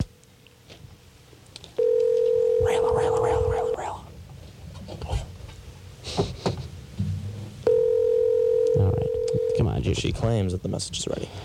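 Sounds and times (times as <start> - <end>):
steady electronic telephone tone as a number is called: 1.8 - 3.8, 7.6 - 9.7
speech: 10.0 - 11.4.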